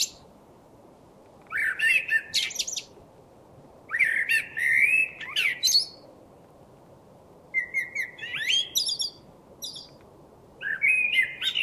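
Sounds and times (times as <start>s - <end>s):
common blackbird Turdus merula singing: 0.0s - 0.2s, 1.5s - 3.0s, 3.9s - 6.1s, 7.5s - 10.0s, 10.6s - 11.6s.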